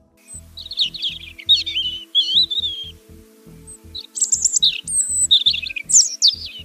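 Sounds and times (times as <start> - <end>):
European robin singing: 0.0 - 6.6
low rumble: 0.0 - 6.6.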